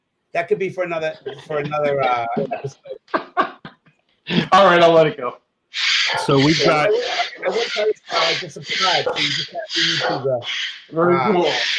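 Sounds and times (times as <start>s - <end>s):
speech: 0.3s - 3.5s, 4.3s - 11.7s
laughter: 1.0s - 4.8s, 6.3s - 10.4s
parrot squawking and chattering excitedly downstairs: 5.7s - 11.7s.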